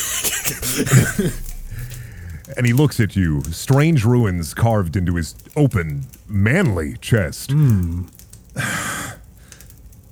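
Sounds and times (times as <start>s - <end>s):
person performing a character's hacking coughs: 0.0s - 2.3s
strained throaty breath: 0.0s - 2.5s
speech: 0.5s - 1.5s, 2.5s - 8.8s.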